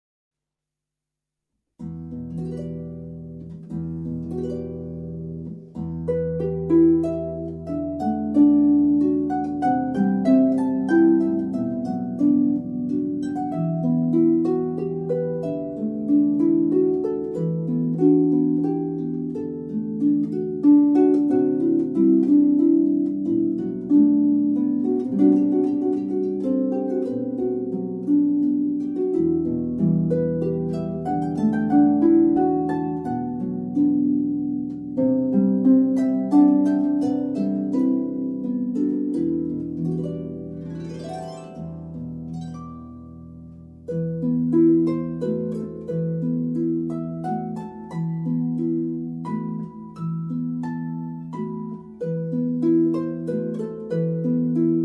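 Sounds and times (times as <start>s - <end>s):
Celtic harp improvisation: 1.8s - 54.8s.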